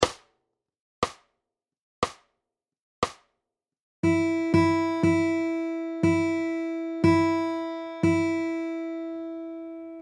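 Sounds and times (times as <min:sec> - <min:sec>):
jingle: 0:04.0 - 0:10.0.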